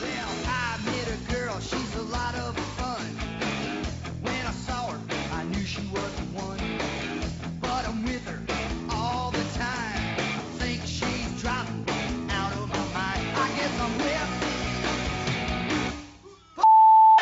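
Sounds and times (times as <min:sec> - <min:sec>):
song with sung vocals: 0:00.0 - 0:16.4
censor bleep electronic tone: 0:16.6 - 0:17.2.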